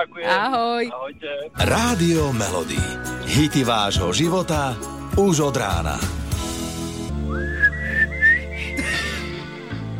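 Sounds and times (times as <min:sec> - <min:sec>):
speech: 0:00.0 - 0:06.2
music: 0:01.5 - 0:09.9
person attempting to whistle: 0:07.2 - 0:08.8.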